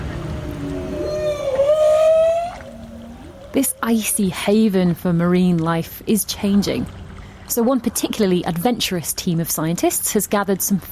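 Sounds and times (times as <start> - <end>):
whale call near a boat in the Antarctic Peninsula: 0.0 - 4.1
low rumbling engine-like drone: 0.0 - 4.5
speech: 3.6 - 7.0, 7.6 - 10.8.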